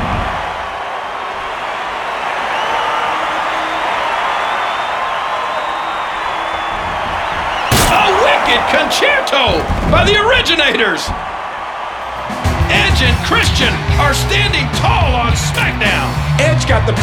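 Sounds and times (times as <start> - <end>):
large wrestling arena crowd roaring and cheering: 0.0 - 17.0
wrestling chair shot crack: 7.6 - 8.6
speech: 8.7 - 11.2, 12.7 - 17.0.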